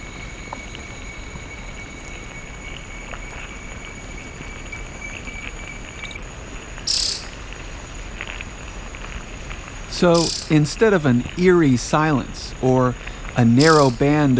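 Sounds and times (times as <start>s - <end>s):
dense rustling forest background: 0.0s - 14.3s
steady high insect trilling around an army ant swarm: 0.0s - 14.3s
short sharp bird call: 6.9s - 7.4s, 10.2s - 10.6s
speech: 10.0s - 14.3s.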